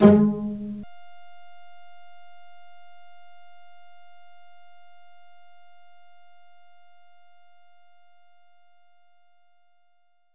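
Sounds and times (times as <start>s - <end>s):
pizzicato strings playing G sharp 3: 0.0s - 0.8s.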